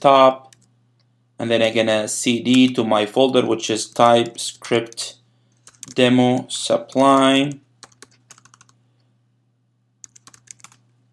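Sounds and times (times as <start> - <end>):
speech: 0.0 - 0.4, 1.4 - 5.2, 5.8 - 7.6
typing a command on a computer keyboard: 0.4 - 0.7, 2.5 - 2.8, 3.9 - 8.8, 10.0 - 10.8.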